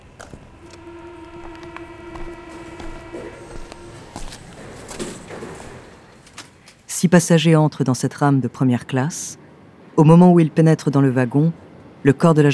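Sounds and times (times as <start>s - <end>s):
sustained whining tone from metro train motors or brakes: 0.0s - 6.7s
scattered metallic clacks from metro train wheels: 0.0s - 6.9s
metro train rolling into a station with a steady rumble: 0.0s - 12.5s
speech: 0.2s - 0.5s, 7.0s - 9.4s, 10.0s - 12.5s.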